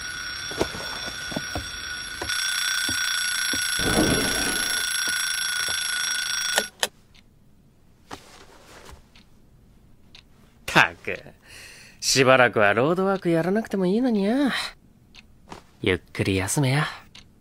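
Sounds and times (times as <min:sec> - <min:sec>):
alarm clock ringing: 0:00.0 - 0:06.8
speech: 0:12.1 - 0:14.8, 0:15.8 - 0:17.0.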